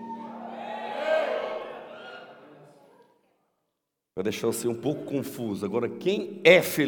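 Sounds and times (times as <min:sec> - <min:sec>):
cheers and whoops: 0:00.0 - 0:02.4
audience shouting loudly together: 0:00.0 - 0:03.0
speech: 0:04.2 - 0:06.8.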